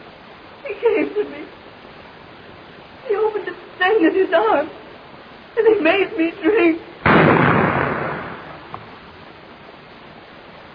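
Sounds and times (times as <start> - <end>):
speech: 0.7 - 1.6, 3.1 - 4.8, 5.6 - 6.9
gunshot fired at a bat: 7.0 - 8.9.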